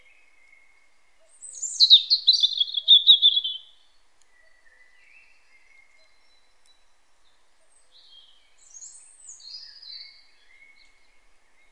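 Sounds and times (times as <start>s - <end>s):
European robin trilling song: 0.0s - 11.6s.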